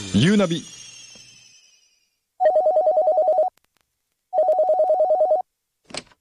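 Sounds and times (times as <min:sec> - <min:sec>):
speech: 0:00.2 - 0:00.8
electronic telephone ringing: 0:02.4 - 0:03.5, 0:04.3 - 0:05.5.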